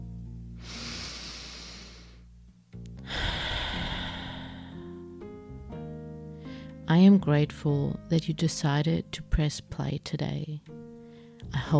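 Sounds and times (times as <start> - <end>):
soft sustained music: 0.0 - 11.7
slow deep breath in and out: 0.6 - 2.3, 3.0 - 5.0
speech: 6.9 - 10.9, 11.5 - 11.7.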